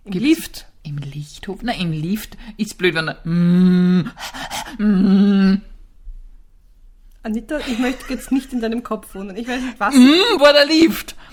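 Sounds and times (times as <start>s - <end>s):
speech: 0.0s - 5.6s, 7.2s - 11.3s
person imitating heavy panting: 3.3s - 5.6s.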